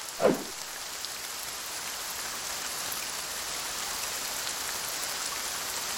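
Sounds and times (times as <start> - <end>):
heavy rain pouring down: 0.0 - 5.9
brief splash or thump: 0.2 - 0.6.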